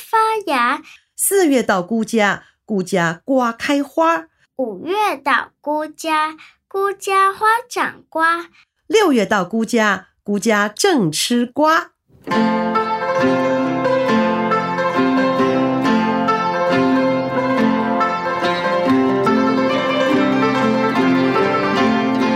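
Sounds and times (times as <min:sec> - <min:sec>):
speech: 0:00.4 - 0:13.6
yangqin Chinese hammered dulcimer played alone: 0:12.3 - 0:22.3.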